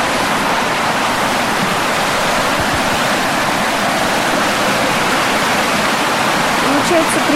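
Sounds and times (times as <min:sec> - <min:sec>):
river rushing down in a fast torrent near a bay: 0:00.0 - 0:07.3.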